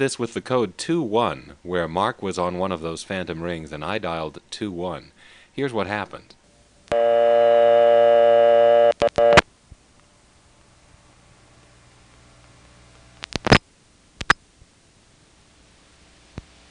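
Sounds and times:
speech: 0.0 - 8.5
quiet hissy silent telephone line: 6.8 - 14.6
steady telephone line tone: 6.9 - 9.4.

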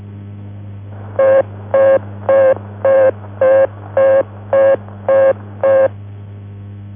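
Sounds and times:
constant low hum: 0.0 - 6.9
American telephone engaged tone beeps: 1.2 - 5.9.

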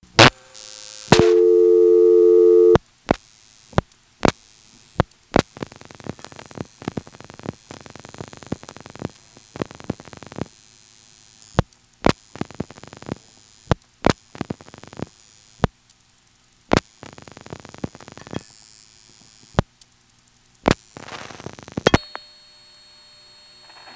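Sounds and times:
loud buzzing telephone exchange tone: 0.0 - 15.7, 16.7 - 19.6, 20.6 - 23.9
steady telephone exchange tone: 0.4 - 2.8, 21.9 - 23.9
scattered sharp clicks of a telephone exchange: 3.1 - 10.6, 11.4 - 18.5, 19.1 - 22.2.

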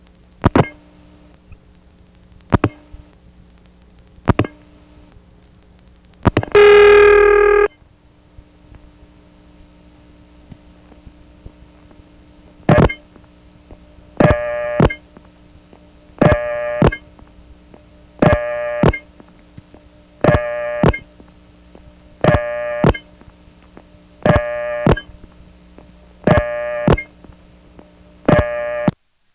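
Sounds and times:
telephone trunk line N1 carrier noise with low hum and hiss: 0.0 - 29.3
harsh buzzy pulsing tone on a telephone trunk line: 6.3 - 7.8, 12.7 - 13.1, 14.2 - 15.1, 16.2 - 17.1, 18.2 - 19.1, 20.2 - 21.1, 22.2 - 23.2, 24.2 - 25.2, 26.2 - 27.2, 28.2 - 29.0.

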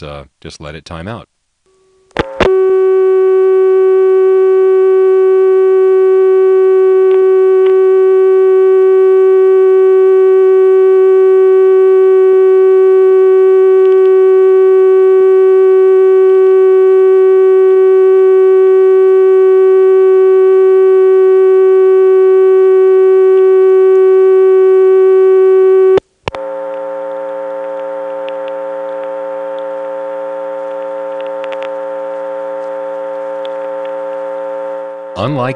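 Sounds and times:
speech: 0.0 - 1.3, 35.4 - 35.5
buzzy telephone exchange dial tone with strong harmonics: 2.1 - 35.2.

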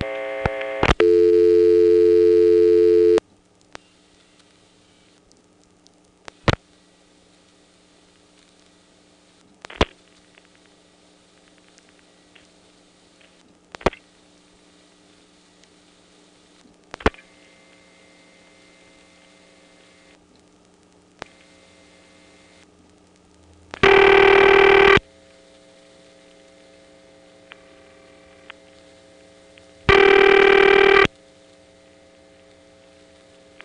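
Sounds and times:
steady telephone exchange tone: 0.0 - 3.2, 23.8 - 25.0, 29.9 - 31.1.

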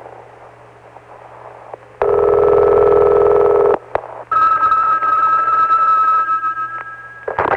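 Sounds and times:
telephone short dial tones: 2.0 - 3.8
loud steady telephone line tone: 2.0 - 7.5.

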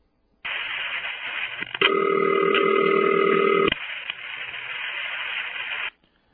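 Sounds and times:
telephone line hiss: 0.5 - 5.9
telephone exchange city ringback tone: 1.8 - 3.7.

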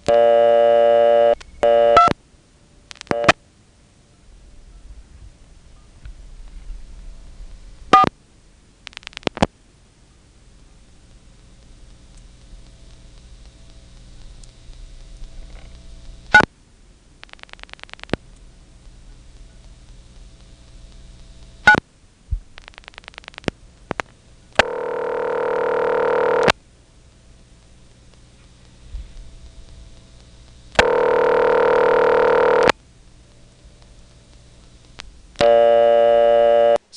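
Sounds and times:
steady tone on an old telephone selector exchange: 0.0 - 2.2, 3.0 - 3.4, 24.6 - 26.6, 30.8 - 32.8, 35.4 - 36.8
low hum: 0.0 - 36.8.

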